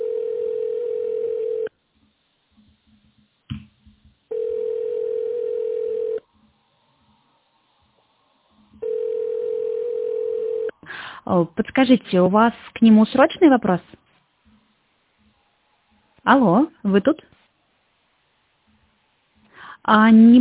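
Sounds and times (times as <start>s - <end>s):
telephone ringback tone on an outgoing call not yet answered: 0.0s - 1.7s, 4.3s - 6.2s, 8.8s - 10.7s
speech: 11.3s - 14.0s, 16.3s - 17.4s, 19.9s - 20.4s.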